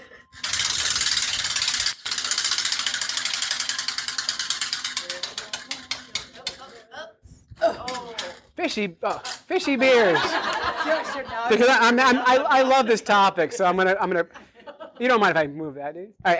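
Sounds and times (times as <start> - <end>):
prize wheel spinning with ratchet clicking at an aquarium event: 0.3 - 6.8, 9.2 - 9.8
voices reacting: 5.6 - 14.4
speech: 8.6 - 14.4, 15.0 - 16.3
laughter: 9.5 - 15.4.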